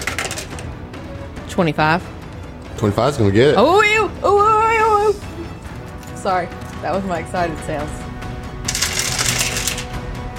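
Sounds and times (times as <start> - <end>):
many dice rattling on a table: 0.0 - 0.6, 8.7 - 9.8
speech: 1.6 - 2.2, 2.8 - 5.3, 6.2 - 8.0.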